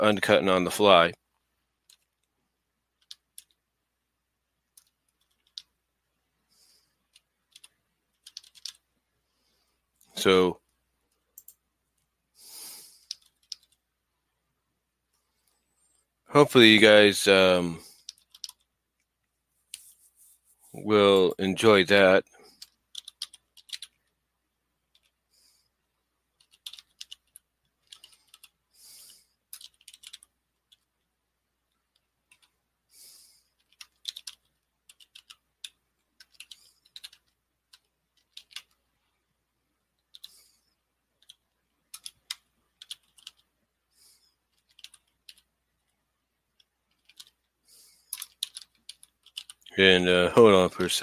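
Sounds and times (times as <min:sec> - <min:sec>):
speech: 0:00.0 - 0:01.2, 0:10.2 - 0:10.6, 0:16.3 - 0:17.9, 0:20.8 - 0:22.4, 0:49.8 - 0:51.0
typing on a computer keyboard: 0:03.0 - 0:03.6, 0:04.7 - 0:05.7, 0:07.1 - 0:08.8, 0:13.0 - 0:13.8, 0:18.0 - 0:18.7, 0:22.6 - 0:24.1, 0:26.4 - 0:28.6, 0:29.5 - 0:30.9, 0:31.9 - 0:32.5, 0:33.6 - 0:38.8, 0:40.0 - 0:40.4, 0:41.2 - 0:43.5, 0:44.5 - 0:45.5, 0:46.6 - 0:47.5, 0:48.1 - 0:49.7.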